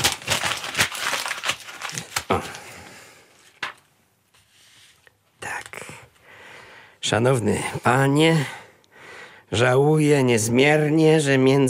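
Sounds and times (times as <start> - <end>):
sheet of letter paper being crumpled: 0.0 - 2.7, 3.4 - 3.8
speech: 7.1 - 8.6, 9.5 - 11.6.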